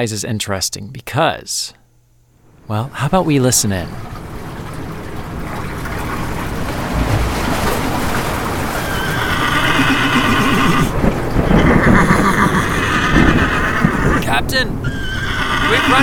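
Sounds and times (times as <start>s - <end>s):
speech: 0.0s - 1.8s, 2.7s - 4.3s
rushing wash of noise like surf and water: 6.1s - 8.8s
Chincoteague ponies neighing: 8.7s - 16.0s.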